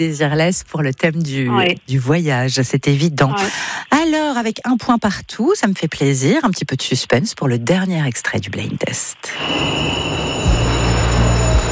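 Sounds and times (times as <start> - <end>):
speech: 0.0 - 10.6
train at a railway station platform humming with a high whine: 9.3 - 11.6.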